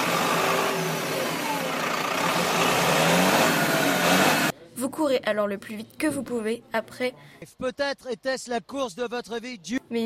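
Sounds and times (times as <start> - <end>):
broad roar of traffic-like noise: 0.0 - 4.5
bus engine accelerating as it pulls away: 0.0 - 4.5
speech: 4.9 - 10.0.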